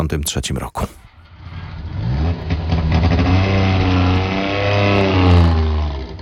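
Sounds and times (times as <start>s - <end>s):
speech: 0.0s - 1.1s
small engine of a Syrena car revving: 1.2s - 6.2s.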